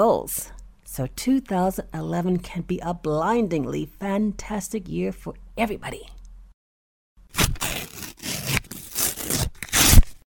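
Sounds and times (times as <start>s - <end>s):
speech: 0.0s - 6.2s
sheets of written paper being torn up: 7.3s - 10.2s.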